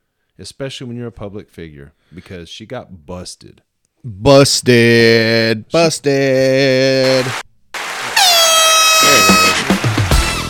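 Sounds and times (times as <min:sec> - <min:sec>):
speech: 0:00.4 - 0:07.4
air horn blasting: 0:08.2 - 0:10.4.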